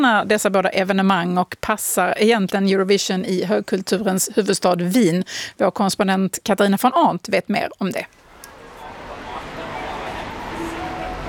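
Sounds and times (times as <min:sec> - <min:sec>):
speech: 0:00.0 - 0:08.2
rush-hour traffic passing a tram stop: 0:08.1 - 0:11.2
tram rail noise at a tram stop: 0:08.2 - 0:11.2
indistinct crowd chatter at a tram stop: 0:08.3 - 0:11.2.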